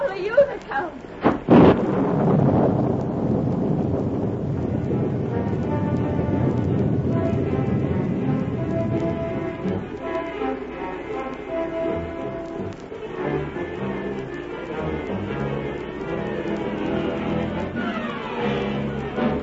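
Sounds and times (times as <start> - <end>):
dense rain in a heavy thunderstorm at night: 0.0 - 19.4
thunder rumbling at night: 0.0 - 19.4
wind gusts: 0.0 - 19.4.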